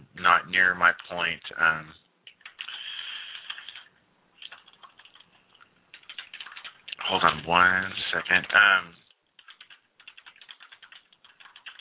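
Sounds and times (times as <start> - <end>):
speech: 0.5 - 2.0, 7.1 - 9.0
fingers typing on a computer keyboard: 2.2 - 5.3, 5.9 - 7.4, 9.4 - 11.7.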